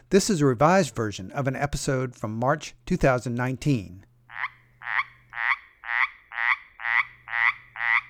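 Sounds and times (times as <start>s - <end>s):
speech: 0.1s - 4.1s
small frog raspy rattling call: 4.3s - 8.0s.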